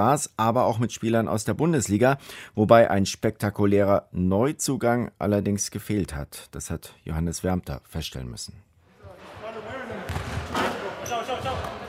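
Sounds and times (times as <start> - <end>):
speech: 0.0 - 8.7
basketballs bouncing on a hard court in a gym: 10.1 - 10.7.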